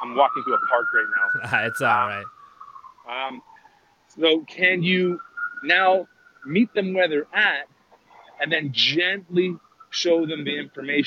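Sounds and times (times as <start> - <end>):
emergency vehicle siren wailing: 0.0 - 2.3
speech: 0.1 - 2.4, 3.1 - 3.5, 4.1 - 7.7, 8.4 - 11.0
person laughing: 1.4 - 2.2.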